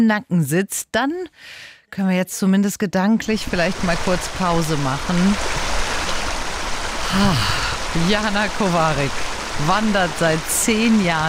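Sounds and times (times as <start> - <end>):
speech: 0.0 - 5.7, 7.1 - 11.2
babbling brook near Oberwiesenthal: 3.2 - 11.2.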